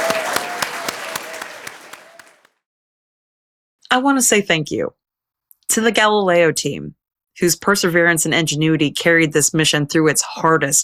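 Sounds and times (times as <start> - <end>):
audience applauding: 0.0 - 2.5
speech: 3.9 - 5.0, 5.7 - 10.8.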